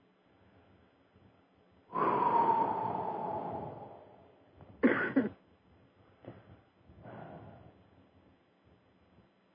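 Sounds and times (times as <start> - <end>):
breathy exhale and quieter breaths: 1.9 - 4.4, 7.0 - 7.8
long rasping cough and short sharp cough burst: 4.8 - 5.4.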